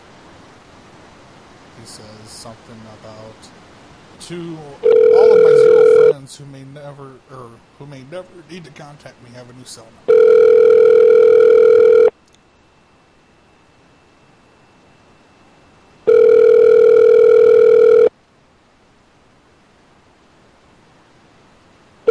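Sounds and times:
speech: 1.8s - 10.1s
ringback tone of an outgoing phone call: 4.8s - 6.2s, 10.1s - 12.1s, 16.0s - 18.1s.

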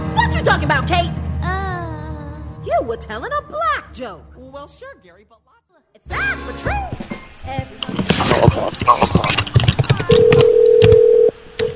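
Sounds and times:
speech: 0.5s - 1.2s, 2.7s - 10.3s
telephone keypad tones while dialing a number: 10.1s - 11.7s.

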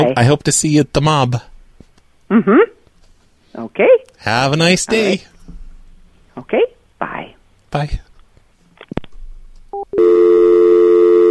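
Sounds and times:
speech: 0.0s - 1.5s, 2.3s - 2.8s, 3.5s - 5.3s, 6.4s - 8.1s, 9.8s - 10.5s
telephone dial tone: 9.8s - 11.2s.

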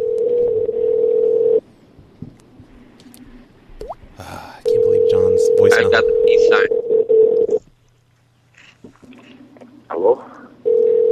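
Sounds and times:
telephone busy signal: 0.0s - 1.6s, 4.6s - 7.6s, 10.6s - 11.0s.

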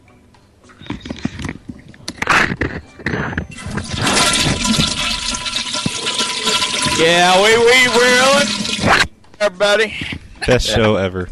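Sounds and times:
toilet flushing with swirling water: 3.5s - 9.1s
speech: 7.0s - 11.2s.

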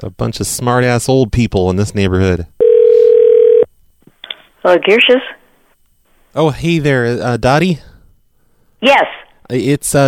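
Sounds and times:
speech: 0.0s - 2.6s, 4.6s - 5.4s, 6.4s - 7.9s, 8.8s - 10.0s
telephone dial tone after hang-up: 2.6s - 3.6s.

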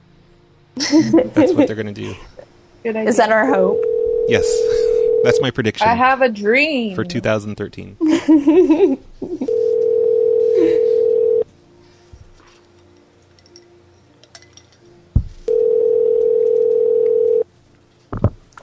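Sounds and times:
laughter: 0.8s - 2.4s, 7.1s - 9.5s
speech: 0.8s - 9.5s, 10.6s - 10.9s
internet call ringing with no answer: 3.7s - 5.5s, 9.5s - 11.4s, 15.5s - 17.4s.

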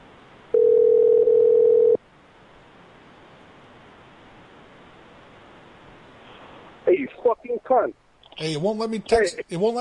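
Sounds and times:
telephone dial tone while placing a call: 0.6s - 2.0s
speech: 7.0s - 9.8s.

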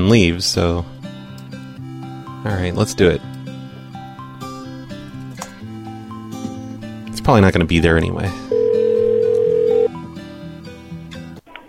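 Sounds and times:
speech: 0.1s - 1.0s, 2.4s - 3.3s, 7.3s - 8.4s
telephone line ringing on an outgoing call: 8.5s - 9.9s
tonal music-like sounds over a telephone line: 8.5s - 10.2s.

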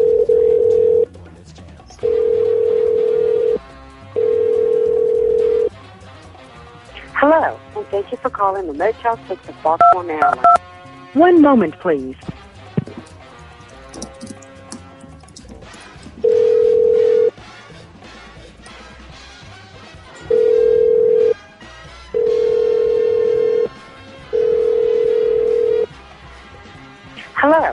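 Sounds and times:
telephone line ringback tones while on hold: 0.0s - 1.1s, 2.0s - 3.6s, 4.2s - 5.7s, 9.8s - 10.6s, 16.2s - 17.4s, 20.2s - 21.4s, 22.2s - 25.9s
speech: 8.0s - 12.4s.

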